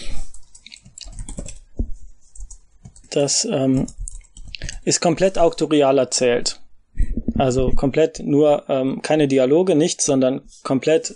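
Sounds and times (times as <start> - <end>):
typing on a computer keyboard: 0.2 - 3.2, 3.8 - 4.9
speech: 3.1 - 4.0, 4.8 - 6.6, 7.4 - 11.1.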